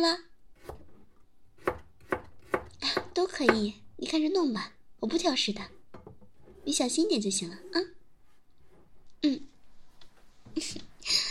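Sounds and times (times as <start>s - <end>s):
speech: 0.0s - 0.3s, 3.2s - 5.8s, 6.6s - 8.0s, 9.2s - 9.5s
chopping food while cooking: 1.6s - 3.7s.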